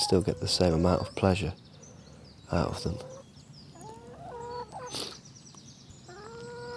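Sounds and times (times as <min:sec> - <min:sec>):
hens clucking and murmuring: 0:00.0 - 0:01.5, 0:02.5 - 0:05.2, 0:06.1 - 0:06.7
steady low farmyard rumble: 0:00.0 - 0:06.7
speech: 0:00.1 - 0:01.7, 0:02.5 - 0:03.2.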